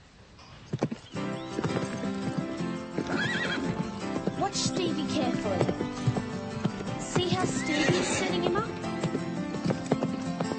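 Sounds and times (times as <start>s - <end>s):
horse hoof clops: 0.4s - 10.5s
horse whinnying: 3.0s - 4.6s, 7.2s - 8.8s
speech: 4.5s - 5.9s.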